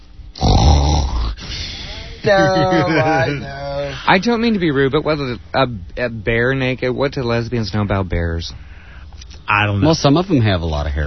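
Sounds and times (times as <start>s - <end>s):
wavering throaty voiced grunt: 0.4s - 1.4s
person imitating a dog snoring: 0.4s - 1.5s
laughter: 2.2s - 4.8s
speech: 2.2s - 8.7s, 9.5s - 11.0s.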